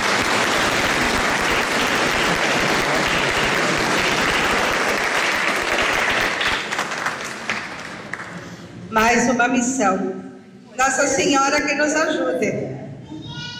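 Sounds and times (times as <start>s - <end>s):
sizable crowd applauding: 0.0s - 8.5s
speech: 9.0s - 10.2s, 10.8s - 12.8s.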